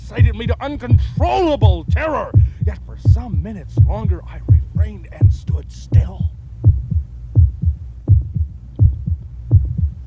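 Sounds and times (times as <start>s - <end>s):
human heartbeat: 0.0s - 10.0s
low throbbing hum: 0.0s - 10.0s
speech: 0.1s - 6.4s.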